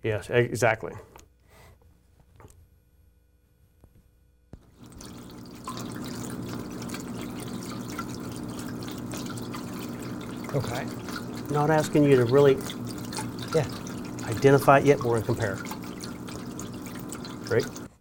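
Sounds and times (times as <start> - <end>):
speech: 0.0 - 1.1, 10.5 - 12.8, 13.5 - 15.7, 17.5 - 17.8
water fountain trickling: 4.6 - 17.9.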